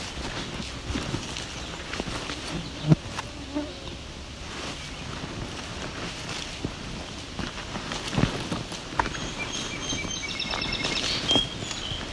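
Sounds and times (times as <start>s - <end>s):
soft footsteps crunching along a trail through juniper flats: 0.0s - 3.3s, 4.3s - 12.1s
outdoor ambience: 0.0s - 12.1s
song sparrow singing: 9.0s - 12.1s.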